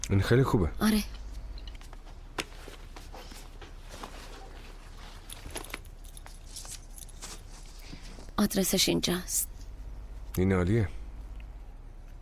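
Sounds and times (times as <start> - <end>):
speech: 0.1 - 1.2, 8.4 - 9.5, 10.4 - 11.0
keys jingling as they are handed over: 4.8 - 7.7.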